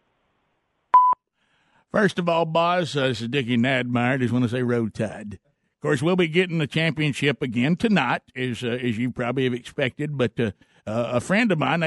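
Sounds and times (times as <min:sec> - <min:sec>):
short electronic voicemail beep: 0:01.0 - 0:01.2
speech: 0:01.9 - 0:11.8.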